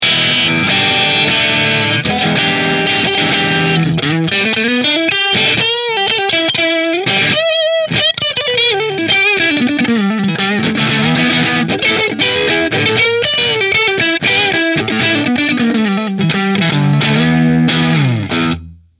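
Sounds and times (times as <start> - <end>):
electric guitar through a split-coil middle pickup and amplifier: 0.0 - 18.9.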